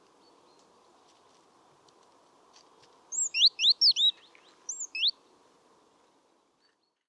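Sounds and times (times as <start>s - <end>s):
great tit Parus major calling: 3.2s - 4.1s, 4.7s - 5.1s.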